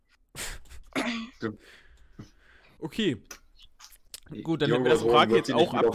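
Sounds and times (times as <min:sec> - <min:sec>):
person spluttering and coughing as if choking: 0:00.9 - 0:01.4
speech: 0:01.4 - 0:03.4, 0:04.3 - 0:05.9.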